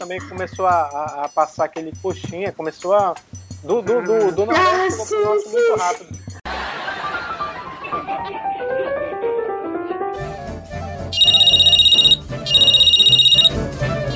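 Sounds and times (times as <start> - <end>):
speech: 0.0 - 6.3
laughter: 6.5 - 9.1
busy melodic jingle with a steady beat: 11.2 - 14.1
mobile phone ringtone trilling: 11.2 - 14.1.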